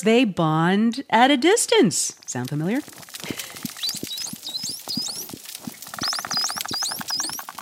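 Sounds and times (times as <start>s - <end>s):
speech: 0.0s - 3.5s
bottlenose dolphin dense clicking and pulsed buzzes: 3.3s - 7.6s
bottlenose dolphin males exchanging upward-sweeping whistles in Western Australia: 3.8s - 5.3s, 6.0s - 7.6s.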